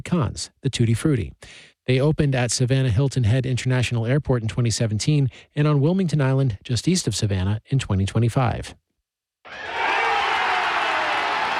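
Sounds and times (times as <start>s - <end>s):
speech: 0.1s - 8.8s
baseball fans at a ballpark cheering the final out of a win: 9.5s - 11.5s.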